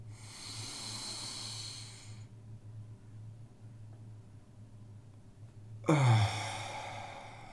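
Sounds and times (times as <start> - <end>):
long breathy inhale during a relaxation breathing exercise: 0.1 - 2.3, 5.9 - 7.5.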